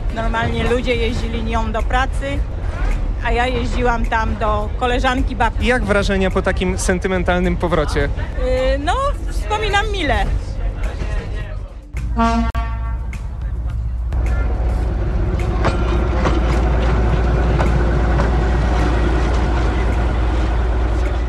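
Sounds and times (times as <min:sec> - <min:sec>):
passenger train arriving at the last station on the line, low rumble: 0:00.0 - 0:21.2
speech: 0:00.2 - 0:02.6, 0:03.2 - 0:10.4, 0:12.2 - 0:12.5
passenger train horn toot: 0:12.2 - 0:13.3.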